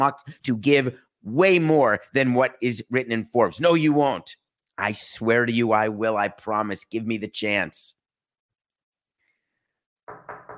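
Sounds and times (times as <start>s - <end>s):
speech: 0.0s - 8.0s
knocking on a door: 10.1s - 10.5s.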